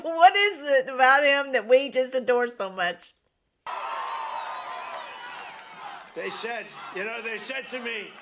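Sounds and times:
speech: 0:00.0 - 0:03.9, 0:06.2 - 0:08.1
large rally crowd cheering and shouting: 0:03.7 - 0:08.1.

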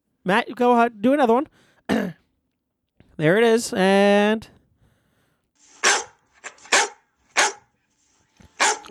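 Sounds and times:
speech: 0:00.2 - 0:02.2, 0:03.2 - 0:04.6
dog barking and yelping: 0:05.6 - 0:07.7, 0:08.5 - 0:08.9.

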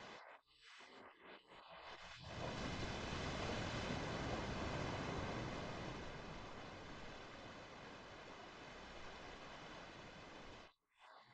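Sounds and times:
ocean surf: 0:02.4 - 0:10.6.

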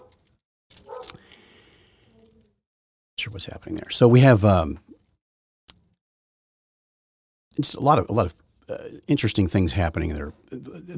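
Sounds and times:
dog barking upstairs: 0:00.9 - 0:01.1
speech: 0:03.2 - 0:04.9, 0:07.6 - 0:10.9.

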